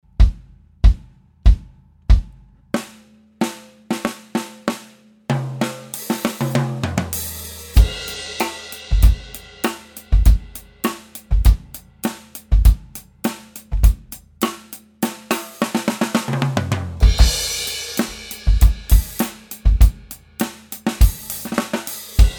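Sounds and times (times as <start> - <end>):
processed bass drum: 0.0 - 2.4, 6.2 - 14.6, 16.3 - 22.3
processed overhead drum mics: 5.4 - 22.3.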